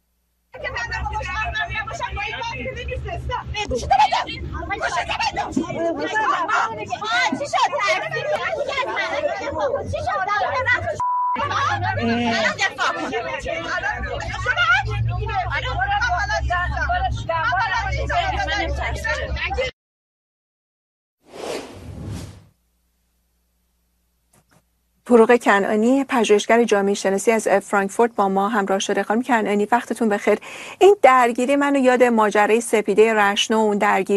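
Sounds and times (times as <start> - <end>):
low engine rumble of a moving city bus: 0.6 - 19.6
people talking loudly on a city bus: 0.6 - 19.7
road noise inside a moving city bus: 0.7 - 17.9
speech: 2.6 - 14.6, 25.1 - 34.1.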